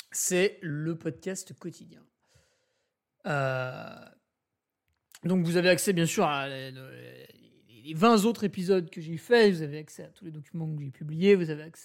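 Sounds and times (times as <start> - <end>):
speech: 0.2 - 2.2, 3.2 - 4.2, 5.2 - 11.8
loud throaty burp: 3.3 - 4.2.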